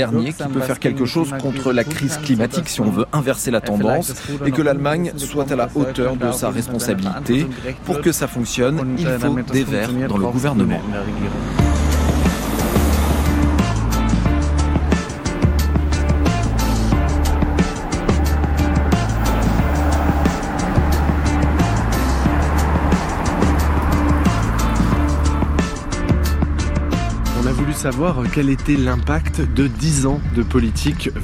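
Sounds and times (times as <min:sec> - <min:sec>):
speech: 0:00.0 - 0:11.6, 0:27.8 - 0:31.2
car engine and tire rumble driving on a road: 0:06.6 - 0:31.2.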